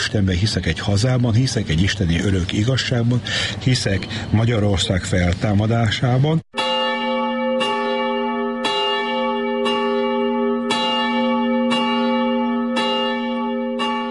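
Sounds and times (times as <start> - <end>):
speech: 0.0 - 6.5
church bell tolling: 6.5 - 14.0.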